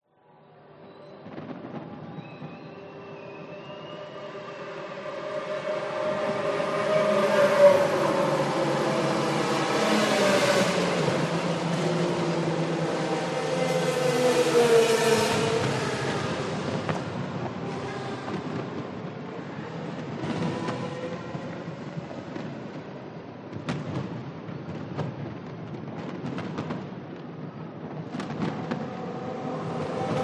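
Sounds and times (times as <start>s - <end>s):
distant fireworks in Singapore: 0.8s - 30.2s
F1 racing cars passing in Singapore: 3.4s - 22.7s, 28.0s - 30.2s.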